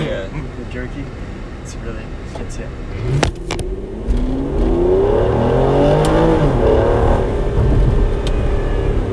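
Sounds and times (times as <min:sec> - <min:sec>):
speech: 0:00.3 - 0:03.7
car engine revving as the car accelerates hard from low gear: 0:02.8 - 0:09.1.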